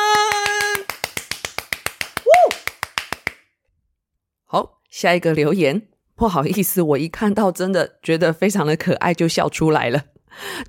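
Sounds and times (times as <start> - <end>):
person clapping hands to praise a listener: 0.0 - 3.5
speech: 4.5 - 10.6.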